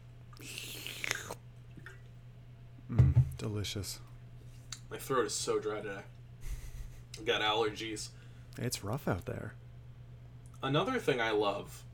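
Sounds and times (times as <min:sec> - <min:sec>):
faint swallow: 0:00.4 - 0:01.4
wet mouth clicks: 0:00.4 - 0:01.4
slurping sip of water: 0:00.4 - 0:01.9
speech: 0:03.4 - 0:04.1, 0:04.9 - 0:06.2, 0:07.2 - 0:09.6, 0:10.6 - 0:11.9.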